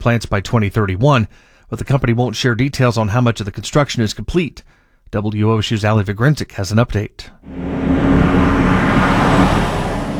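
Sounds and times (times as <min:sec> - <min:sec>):
speech: 0:00.0 - 0:07.9
heavy truck rumbling down rural road: 0:07.5 - 0:10.1.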